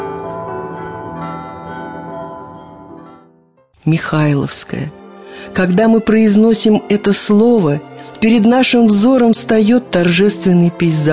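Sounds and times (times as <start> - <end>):
heavy monastery church bells ringing: 0.0 - 3.4
speech: 3.8 - 11.1.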